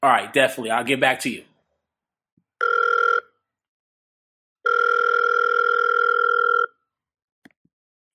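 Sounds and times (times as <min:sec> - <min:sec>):
speech: 0:00.0 - 0:01.5
telephone ringing with a steady electronic tone for an incoming call: 0:02.6 - 0:03.4, 0:04.6 - 0:06.8.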